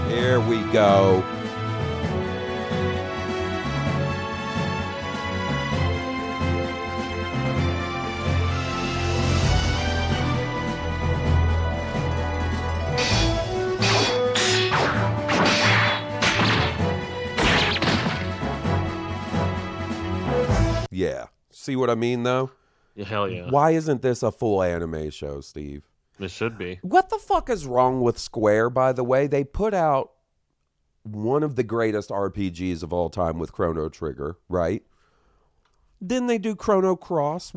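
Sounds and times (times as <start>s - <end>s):
energetic video game opening theme music: 0.0s - 20.9s
speech: 0.1s - 1.4s, 21.6s - 30.2s, 31.0s - 34.9s, 36.0s - 37.5s.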